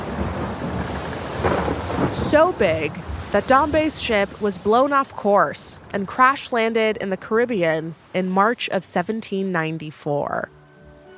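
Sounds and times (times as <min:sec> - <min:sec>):
deep rolling thunder: 0:00.0 - 0:06.0
steady rain: 0:00.0 - 0:09.6
speech: 0:02.2 - 0:10.6.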